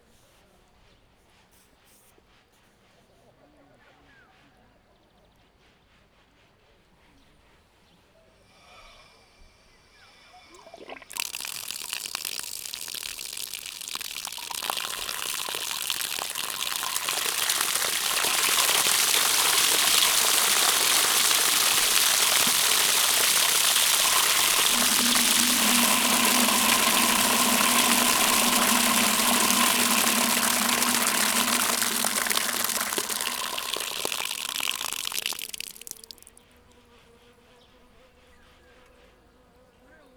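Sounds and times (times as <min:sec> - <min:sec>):
artesian well in Szogliget: 0:10.5 - 0:36.3.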